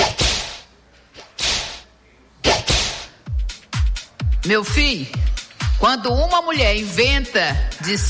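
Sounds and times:
loud whip cracks: 0.0s - 3.1s
speech: 4.4s - 8.0s.

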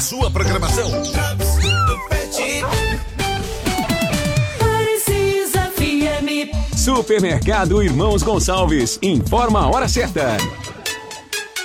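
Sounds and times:
dense continuous musical backdrop: 0.0s - 11.6s
speech: 0.1s - 1.4s, 6.9s - 10.6s
cat meowing: 1.5s - 2.8s.

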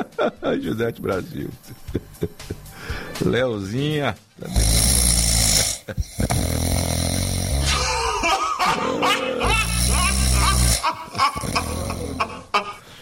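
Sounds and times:
laughter: 0.0s - 0.7s, 1.6s - 2.7s, 7.7s - 12.8s
speech: 0.0s - 2.6s, 3.2s - 4.8s, 5.9s - 6.7s
person snoring with rough rattling breaths: 4.4s - 12.9s.

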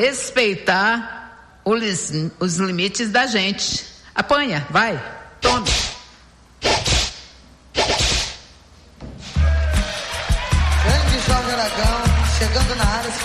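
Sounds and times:
speech: 0.0s - 5.9s, 11.6s - 13.2s
whip cracks: 6.6s - 8.4s
upbeat music: 9.5s - 13.2s.

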